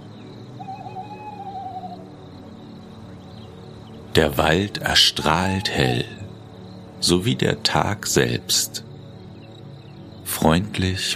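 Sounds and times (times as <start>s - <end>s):
Eurasian eagle-owl hooting by a snowy forest path: 0.0s - 2.4s, 4.2s - 6.3s
speech: 4.2s - 6.2s, 7.0s - 8.9s, 10.3s - 11.1s.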